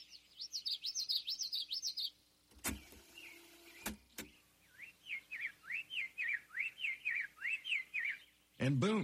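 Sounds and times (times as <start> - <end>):
forest birds chirping: 0.0 - 9.0
sharp mechanical clicks: 2.5 - 4.3.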